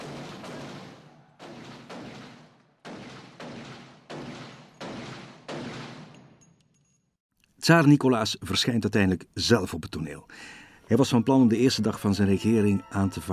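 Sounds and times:
gunshots fired into the air: 0.0 - 6.4
speech: 7.6 - 13.3.

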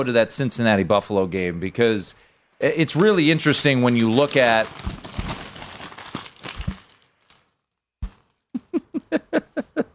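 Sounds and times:
speech: 0.0 - 5.1
paper being crumpled up to be thrown in the trash: 2.9 - 8.4.

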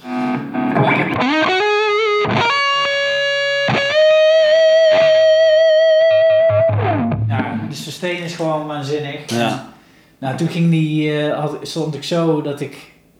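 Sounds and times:
fuzz-distorted electric guitar through fuzz pedal: 0.0 - 7.7
speech: 8.0 - 12.9.

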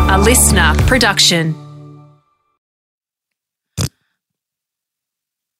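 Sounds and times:
speech: 0.1 - 1.6
fart: 3.7 - 4.0.

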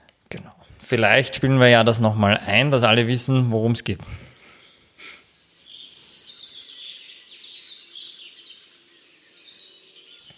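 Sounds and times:
speech: 0.3 - 4.3
blackbird sharp high-pitched alarm call: 4.5 - 10.3.

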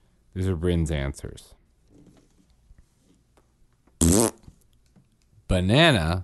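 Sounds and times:
speech: 0.4 - 1.6, 5.5 - 6.2
short loud buzzy fart: 4.0 - 4.5.

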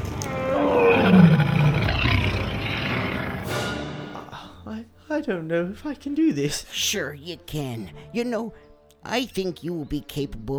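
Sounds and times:
giant monstrous beast roaring and snarling: 0.0 - 3.9
speech: 5.2 - 10.5.

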